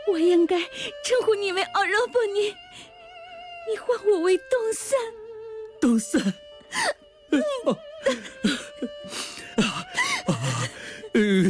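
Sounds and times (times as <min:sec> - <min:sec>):
speech: 0:00.1 - 0:02.9, 0:03.7 - 0:05.2, 0:05.8 - 0:09.3
person crying in sobs and whimpering wails: 0:06.2 - 0:11.4.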